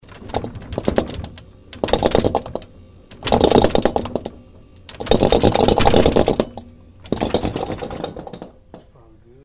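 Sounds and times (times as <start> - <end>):
rattling: 0.0 - 9.0.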